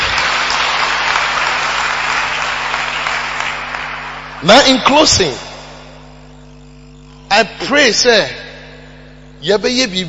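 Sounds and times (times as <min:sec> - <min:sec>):
crowd clapping: 0:00.0 - 0:05.4
speech: 0:04.4 - 0:05.4, 0:07.4 - 0:08.4, 0:09.4 - 0:10.0.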